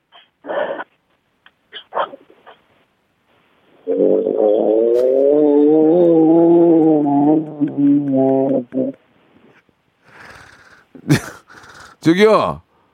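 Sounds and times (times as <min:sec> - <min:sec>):
68-year-old person vocally imitating a revving motorcycle: 0:03.9 - 0:09.0
laughter: 0:11.0 - 0:11.5
speech: 0:12.0 - 0:12.6.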